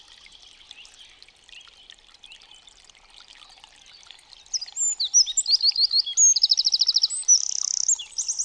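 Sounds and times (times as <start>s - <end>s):
Eurasian wren song: 4.4s - 8.4s.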